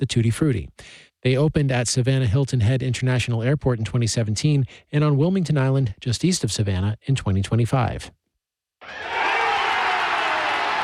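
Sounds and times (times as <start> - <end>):
speech: 0.0 - 8.2
baseball fans cheering the final out of a win: 8.8 - 10.8.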